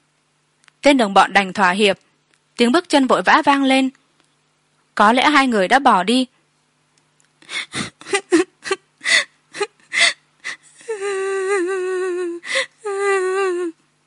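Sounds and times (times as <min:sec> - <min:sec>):
speech: 0:00.8 - 0:02.0, 0:02.6 - 0:04.0, 0:05.0 - 0:06.4, 0:07.5 - 0:08.4
young abandoned injured woman crying desperately: 0:07.5 - 0:13.7.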